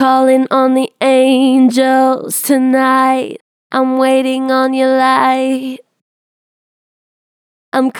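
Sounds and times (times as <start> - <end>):
vocals with strong natural vibrato: 0.0 - 5.9.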